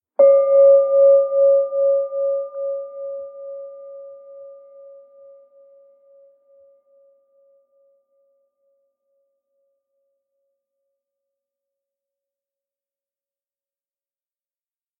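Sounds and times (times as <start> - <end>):
meditation bell: 0.0 - 9.4.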